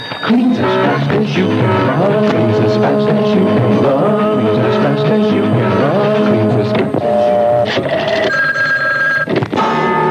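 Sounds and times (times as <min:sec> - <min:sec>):
telephone ringing after a number is dialed: 0:00.0 - 0:10.0
speech: 0:00.3 - 0:08.4.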